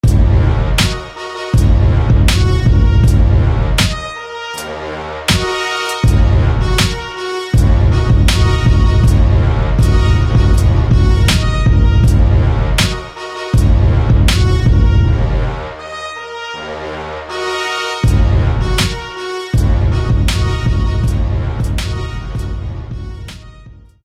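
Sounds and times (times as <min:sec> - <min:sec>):
rich brass: 0:00.0 - 0:24.0.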